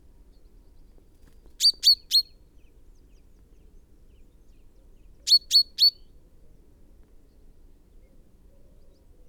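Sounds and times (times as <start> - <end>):
common chaffinch Fringilla coelebs calling: 1.6 - 2.3, 5.3 - 6.0.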